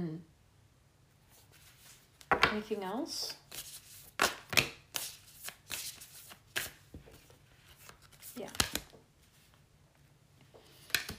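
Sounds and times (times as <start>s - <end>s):
oracle cards being shuffled: 1.3s - 2.5s, 3.4s - 9.6s, 10.7s - 11.1s
speech: 2.5s - 3.4s.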